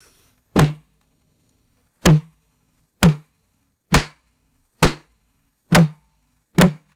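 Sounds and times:
resonant rubber balloon boings: 0.6 - 0.9, 2.0 - 2.4, 3.0 - 3.3, 3.9 - 4.2, 4.8 - 5.1, 5.7 - 6.0, 6.6 - 6.9
rubber balloon thumps: 0.6 - 1.0, 2.0 - 2.4, 3.0 - 4.2, 4.8 - 5.1, 5.7 - 6.9.

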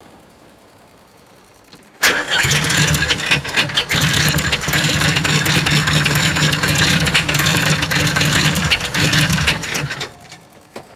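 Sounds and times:
vintage heavy vehicle starter motor cranking: 2.0 - 10.4.

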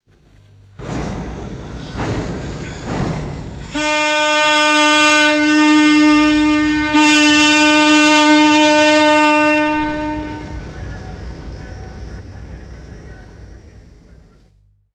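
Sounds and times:
tugboat horn blasts: 3.7 - 10.8.

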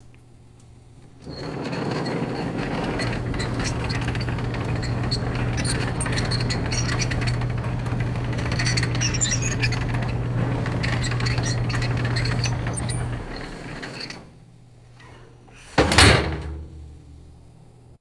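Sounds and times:
heavy metal refrigerator rolling on wheels: 0.9 - 17.9.

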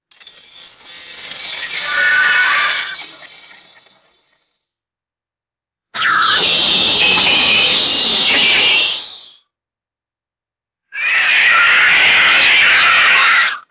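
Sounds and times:
robotic alien creature shriek: 1.4 - 3.8, 6.0 - 9.2, 11.0 - 13.7.

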